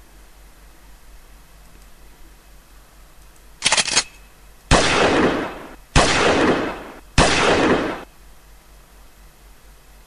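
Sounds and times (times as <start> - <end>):
gunfire rattle on a quiet riverbank: 3.6 - 8.1
loud gunshot blasts on a quiet riverbank: 4.7 - 8.1.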